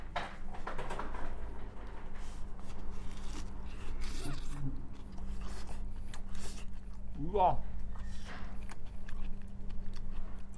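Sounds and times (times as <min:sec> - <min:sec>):
steady low hum: 0:00.0 - 0:10.5
biting and chewing hot pan-fried gyoza with crisp winged skin: 0:02.5 - 0:10.5
speech: 0:07.3 - 0:07.7.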